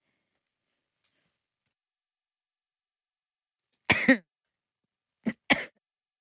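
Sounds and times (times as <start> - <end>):
person coughing harshly: 3.9 - 4.3, 5.3 - 5.8.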